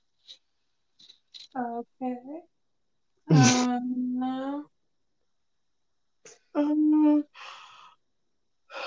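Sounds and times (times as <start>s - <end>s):
speech: 1.5s - 2.6s, 3.3s - 4.7s, 6.6s - 7.5s
person yawning: 3.3s - 3.7s.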